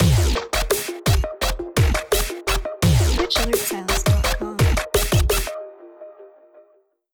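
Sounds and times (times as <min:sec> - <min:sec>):
dubstep music: 0:00.0 - 0:05.7.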